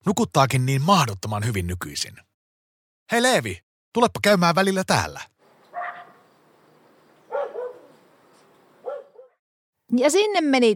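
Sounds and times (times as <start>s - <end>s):
speech: 0.0s - 2.3s, 3.1s - 5.3s, 9.9s - 10.7s
large dog barking: 5.7s - 6.2s, 7.2s - 8.0s, 8.8s - 9.4s.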